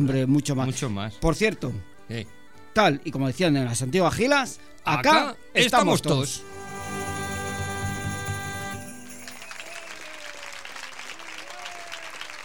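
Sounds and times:
speech: 0.0s - 6.8s
brief held tonal chord: 6.2s - 9.6s
crowd applause: 6.4s - 12.4s.

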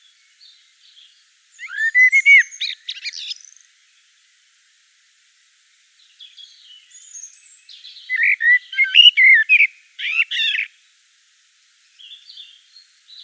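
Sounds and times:
common blackbird singing fluty warbled notes in Provence: 0.0s - 3.7s, 6.2s - 10.7s, 11.9s - 13.2s.

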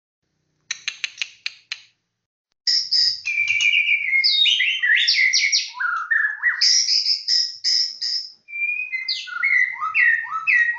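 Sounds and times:
competition-winning songbird giving sharp clicks: 0.7s - 1.9s
competition-winning songbird singing varied whistles and trills: 2.7s - 10.7s.

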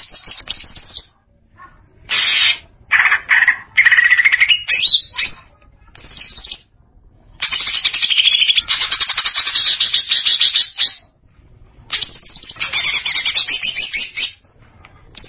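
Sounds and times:
greater green leafbird song of harsh rapid chattering bursts: 0.0s - 1.1s, 2.1s - 6.7s, 7.4s - 11.0s, 11.9s - 14.4s.

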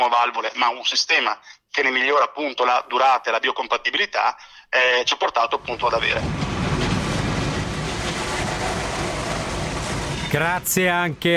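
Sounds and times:
speech: 0.0s - 6.5s, 10.3s - 11.3s
train rumble: 5.5s - 11.3s.

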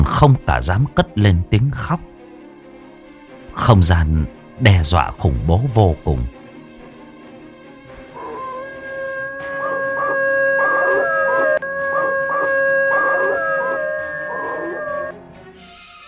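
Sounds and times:
speech: 0.1s - 2.1s, 3.6s - 6.4s
wolf howling at the moon near an old forest: 8.0s - 15.1s.

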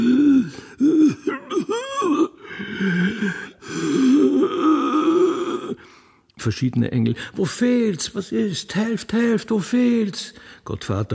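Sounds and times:
man groaning and moaning hoarsely: 0.0s - 5.8s
speech: 2.8s - 3.4s, 6.4s - 11.1s.

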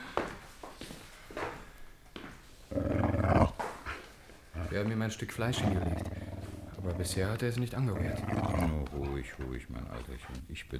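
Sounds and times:
dog bedded down on straw growling: 2.7s - 3.6s, 4.6s - 10.5s
speech: 4.8s - 6.2s, 6.8s - 10.7s.

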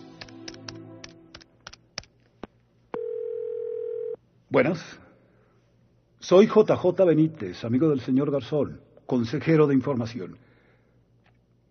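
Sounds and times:
steady telephone tone: 3.0s - 4.2s
speech: 4.5s - 5.0s, 6.3s - 10.5s.

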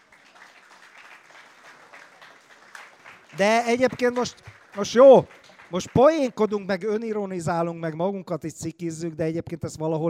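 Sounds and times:
applause of many hands clapping after a joke: 0.0s - 7.3s
speech: 3.3s - 10.0s.

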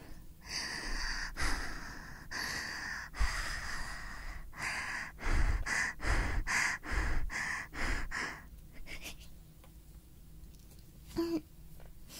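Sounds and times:
person imitating panting close to a binaural ASMR microphone: 0.0s - 9.3s.

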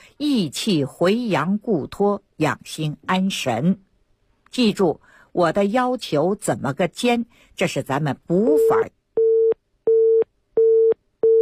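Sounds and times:
speech: 0.2s - 3.9s, 4.5s - 9.0s
telephone busy tone after a radio call-in caller's line dropped: 8.6s - 11.3s.

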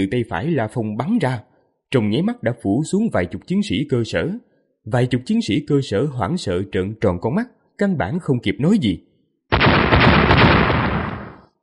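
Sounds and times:
speech: 0.0s - 9.1s
explosion sound effect: 9.5s - 11.6s.

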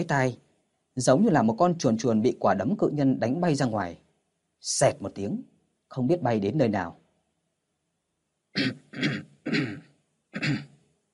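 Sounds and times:
speech: 0.0s - 0.4s, 1.0s - 4.0s, 4.6s - 7.0s, 8.6s - 9.8s, 10.4s - 10.7s
dry coughing: 8.5s - 10.8s.

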